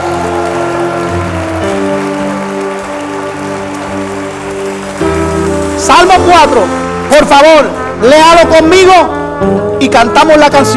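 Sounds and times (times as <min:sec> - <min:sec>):
audience applauding: 0:00.0 - 0:07.9
speech: 0:06.0 - 0:10.7.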